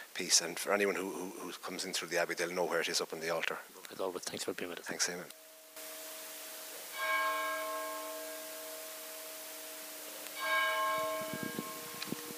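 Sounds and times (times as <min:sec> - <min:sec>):
speech: 0:00.2 - 0:05.4
church bell strikes at an abbey: 0:06.9 - 0:12.3.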